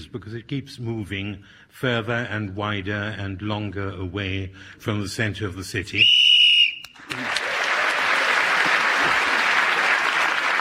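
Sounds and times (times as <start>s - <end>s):
speech: 0.0s - 6.2s
whistle blown to end a turn: 6.0s - 7.0s
audience applauding: 7.0s - 10.5s.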